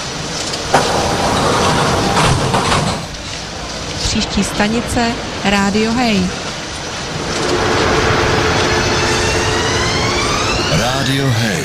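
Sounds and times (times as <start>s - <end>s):
train doors closing with a hiss: 0.6s - 3.2s, 7.1s - 11.3s
speech: 4.2s - 6.4s, 11.0s - 11.6s.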